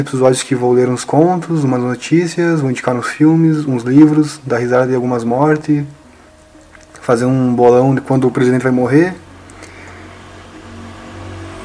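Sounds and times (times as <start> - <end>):
speech: 0.0 - 6.0, 7.1 - 9.2
car traffic passing on a busy street: 6.0 - 11.6.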